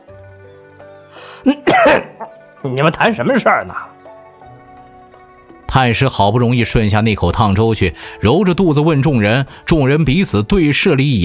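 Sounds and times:
speech: 1.4 - 4.0, 5.7 - 11.2
elderly man coughing after swallowing scalding porridge: 1.5 - 2.4.

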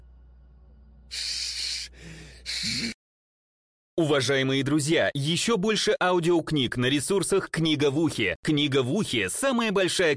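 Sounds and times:
human voice imitating a sly snake's hiss: 1.1 - 3.0
speech: 4.0 - 10.1.

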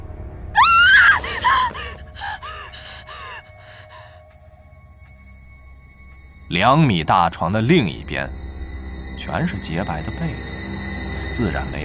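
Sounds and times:
man in bed screaming in fright: 0.6 - 3.4
man in bed gasping cries: 1.0 - 4.1
speech: 6.5 - 8.5, 9.3 - 10.6, 11.3 - 11.8.

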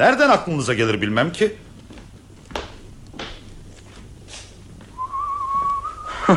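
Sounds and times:
speech: 0.0 - 1.6
person whistling softly: 5.0 - 6.3.

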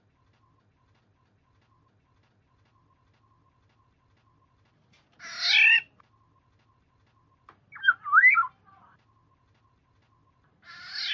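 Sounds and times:
Black-naped oriole giving a harsh nasal squawk and whistled phrase: 5.2 - 5.9, 7.7 - 8.6, 10.6 - 11.1.

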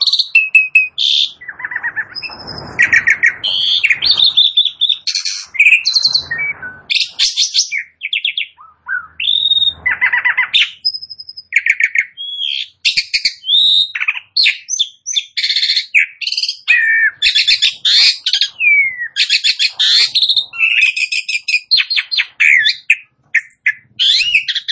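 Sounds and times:
Asian pied starling song: 0.0 - 24.6.

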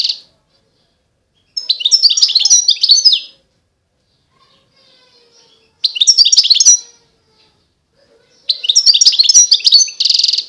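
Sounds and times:
European goldfinch singing bright twittering and tinkling notes: 1.4 - 3.3, 5.3 - 7.0, 8.3 - 10.4.

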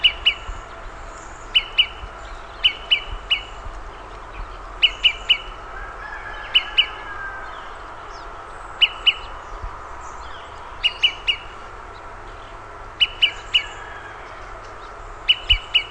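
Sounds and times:
olive-sided flycatcher Contopus cooperi pip calls: 0.0 - 5.7, 8.8 - 11.7, 12.3 - 13.9, 15.2 - 15.9
steady background hiss: 0.0 - 15.9.

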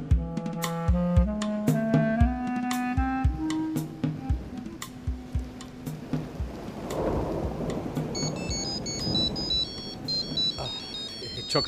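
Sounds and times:
steady rumble like rain: 0.2 - 11.6
thunder: 3.3 - 11.6
mobile phone ringing with an electronic melody: 8.1 - 11.6.

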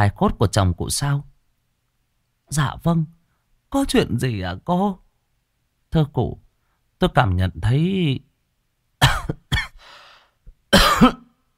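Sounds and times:
speech: 0.0 - 1.3, 2.5 - 5.0, 5.9 - 6.4, 7.0 - 8.3, 11.0 - 11.2
woman coughing softly: 9.0 - 9.8, 10.7 - 11.3
breathy exhale: 9.8 - 10.4.

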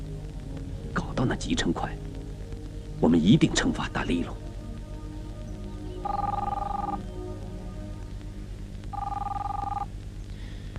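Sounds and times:
steady low hum: 0.0 - 10.7
speech: 1.2 - 2.1, 3.0 - 4.4
telephone bell ringing: 6.0 - 7.0, 9.0 - 9.9.

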